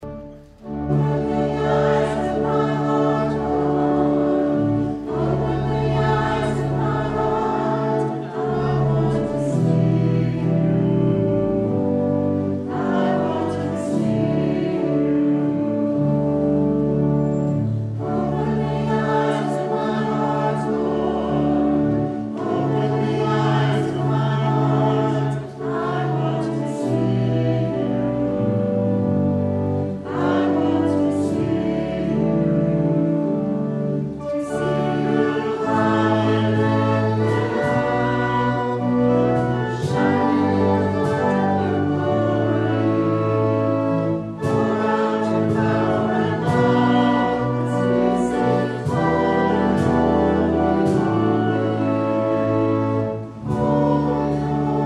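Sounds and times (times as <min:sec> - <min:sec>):
church choir singing an anthem: 0:00.0 - 0:54.8.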